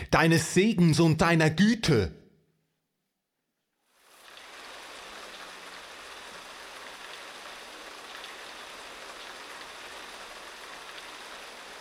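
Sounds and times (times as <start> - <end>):
speech: 0.1 - 2.2
steady rain falling: 3.8 - 11.7.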